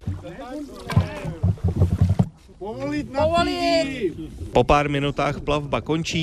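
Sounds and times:
knocking and splashing paddle strokes of a paddled boat: 0.0 - 4.7
speech: 0.2 - 1.8, 2.6 - 6.2.

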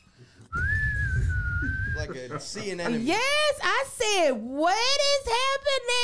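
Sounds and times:
person imitating a high thin whistle with their mouth: 0.5 - 2.1
laughter: 1.6 - 3.5
speech: 2.1 - 6.0.

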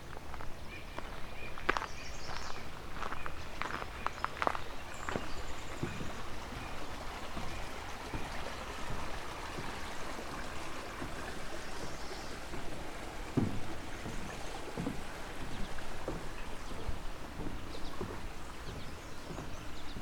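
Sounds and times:
narrow creek flowing: 0.0 - 20.0
faint knocks: 5.1 - 20.0.

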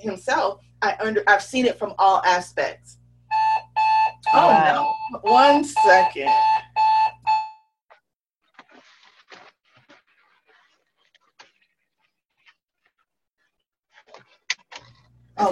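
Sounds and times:
speech: 0.0 - 3.0, 4.3 - 6.6
electronic alarm beeps: 3.3 - 7.7.

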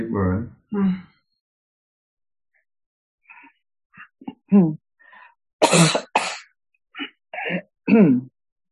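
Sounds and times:
speech: 0.2 - 1.1, 4.5 - 4.8, 5.7 - 6.1, 7.5 - 8.3
person with chest tightness coughing during an energy-release session: 5.6 - 6.4, 7.0 - 8.3.

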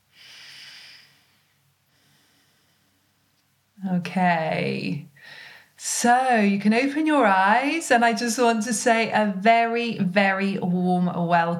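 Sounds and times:
long deep breath: 0.0 - 3.2, 5.2 - 5.8
speech: 3.8 - 11.5.

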